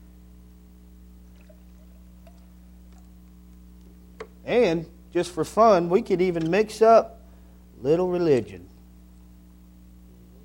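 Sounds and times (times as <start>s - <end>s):
steady low electrical hum: 0.0s - 10.4s
tea pouring into a glass: 1.3s - 3.2s
speech: 4.5s - 7.2s, 7.8s - 8.7s.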